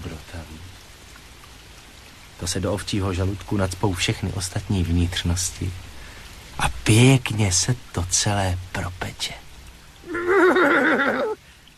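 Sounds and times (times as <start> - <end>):
speech: 2.4 - 5.9, 6.6 - 9.4
horse neighing: 10.0 - 11.4.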